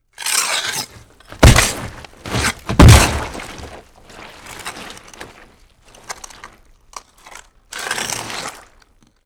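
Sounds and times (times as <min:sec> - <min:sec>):
monster claws scraping: 0:00.8 - 0:05.4
monster footsteps: 0:01.3 - 0:03.8.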